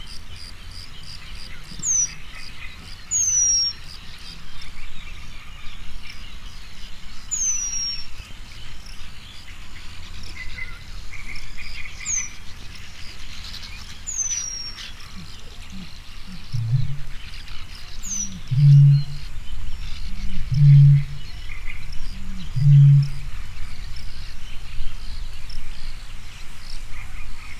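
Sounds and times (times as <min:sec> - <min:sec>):
Eurasian penduline tit calling in Hortobágy National Park: 0:11.9 - 0:25.9
Eurasian bittern calling in Hortobágy National Park: 0:14.0 - 0:25.2.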